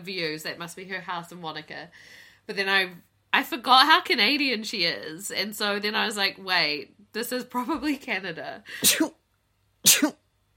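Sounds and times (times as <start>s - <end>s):
speech: 0.0s - 9.2s, 9.8s - 10.2s
person sneezing: 8.7s - 9.2s, 9.8s - 10.2s.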